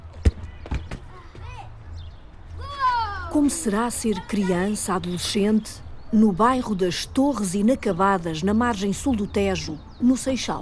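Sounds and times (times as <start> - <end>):
ball thumping on hard ground: 0.1 - 1.4
children shouting and calling out while playing ball outdoors: 2.6 - 4.8
speech: 3.3 - 10.5.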